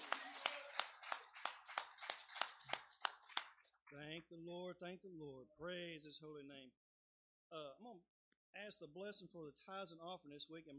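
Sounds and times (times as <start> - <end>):
audience clapping in rhythm: 0.0 - 4.1
speech: 3.9 - 6.8, 7.5 - 10.7.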